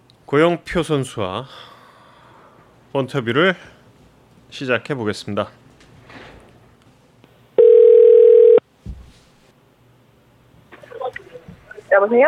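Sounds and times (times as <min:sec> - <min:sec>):
speech: 0:00.3 - 0:01.7, 0:02.9 - 0:03.8, 0:04.5 - 0:05.6, 0:12.0 - 0:12.2
telephone ringing tone while placing a call: 0:07.6 - 0:08.6.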